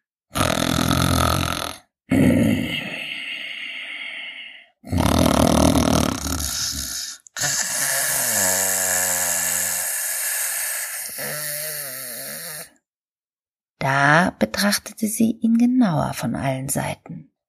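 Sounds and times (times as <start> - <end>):
human voice imitating a wolf snoring: 0.3 - 3.5, 4.8 - 12.8
speech: 14.7 - 17.2.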